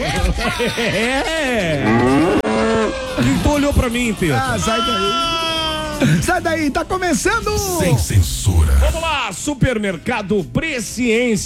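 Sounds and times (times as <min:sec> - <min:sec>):
laughter: 0:00.0 - 0:06.4
speech: 0:00.4 - 0:05.4, 0:06.0 - 0:11.4
cow mooing: 0:01.8 - 0:03.0.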